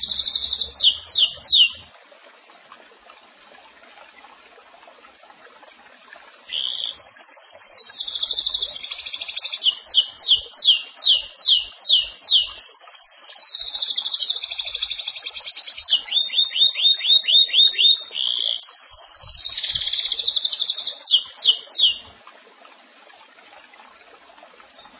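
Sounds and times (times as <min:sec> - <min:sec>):
Belgian canary song with high trills and downslurred whistles: 0:00.0 - 0:01.8, 0:06.5 - 0:22.1.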